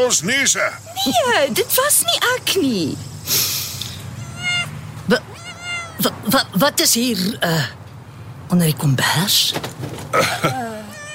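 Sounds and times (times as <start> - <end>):
speech: 0.0 - 3.5, 5.1 - 5.3, 6.0 - 7.8, 8.5 - 10.6
stray cat meowing under a blanket in a bus: 4.1 - 6.2, 10.7 - 11.1.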